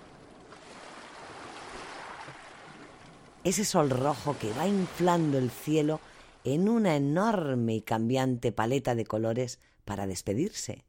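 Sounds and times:
water waves lapping and washing against a shore: 0:00.0 - 0:07.0
speech: 0:03.4 - 0:10.8.

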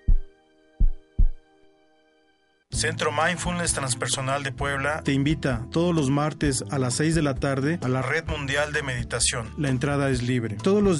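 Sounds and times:
deep booming heartbeat sound effect thumps: 0:00.0 - 0:01.4
speech: 0:02.8 - 0:10.9.

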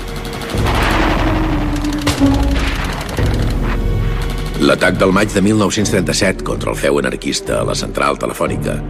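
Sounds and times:
machine gun fire: 0:00.0 - 0:05.0
speech: 0:04.6 - 0:08.8.

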